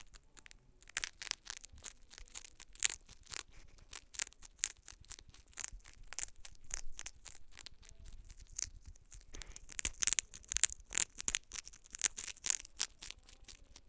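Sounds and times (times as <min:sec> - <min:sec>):
hedgehog eating: 0:00.0 - 0:13.8.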